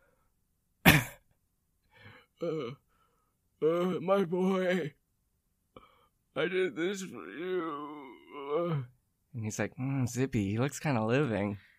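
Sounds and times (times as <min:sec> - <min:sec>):
voice imitating a cough: 0:00.8 - 0:01.3
speech: 0:02.4 - 0:02.8, 0:03.6 - 0:05.0, 0:06.4 - 0:11.7.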